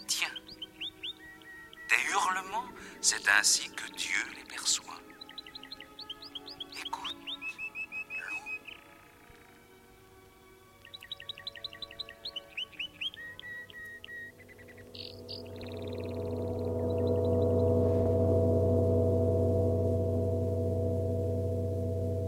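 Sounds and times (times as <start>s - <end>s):
birds chirping and trilling: 0.0s - 22.2s
speech: 2.3s - 5.1s
low rumble: 14.3s - 22.2s.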